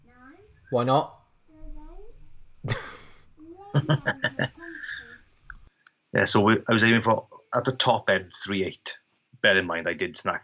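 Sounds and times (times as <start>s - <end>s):
child's short high-pitched rising vocalisation: 0.0s - 0.6s, 1.5s - 2.2s, 3.4s - 5.2s
speech: 0.7s - 1.2s, 3.7s - 4.6s, 6.1s - 10.4s
laughter: 2.7s - 5.2s.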